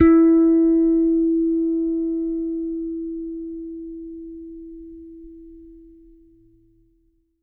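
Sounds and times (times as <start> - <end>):
T-Bird bass guitar finger-played E4 note: 0.0 - 4.5.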